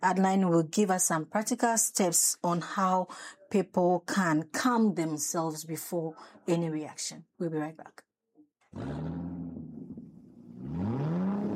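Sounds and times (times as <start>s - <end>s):
speech: 0.0s - 8.1s, 8.7s - 9.4s
car engine starting, idling and revving: 8.7s - 11.5s.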